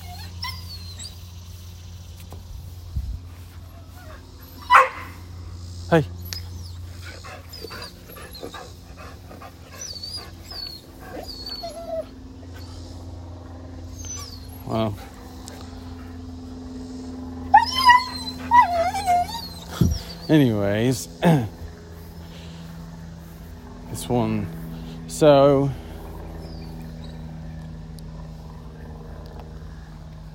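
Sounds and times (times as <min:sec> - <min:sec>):
dog whimpering and whining: 0:00.0 - 0:01.2, 0:06.2 - 0:12.7, 0:14.0 - 0:14.8, 0:17.4 - 0:20.3
steady low hum: 0:00.0 - 0:30.3
neighbor's dog barking: 0:04.7 - 0:05.2
speech: 0:05.9 - 0:06.2, 0:20.3 - 0:21.5, 0:24.1 - 0:24.6, 0:25.2 - 0:25.8.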